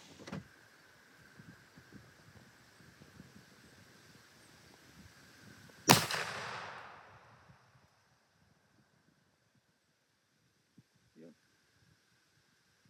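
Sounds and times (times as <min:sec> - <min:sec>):
outdoor wind: 0:00.0 - 0:12.8
rifle shot with rolling echo: 0:05.9 - 0:07.3.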